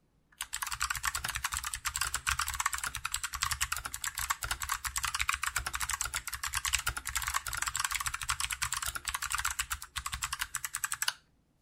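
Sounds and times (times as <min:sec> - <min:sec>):
mechanical keyboard with Kailh BOX White switches typing: 0:00.4 - 0:11.2.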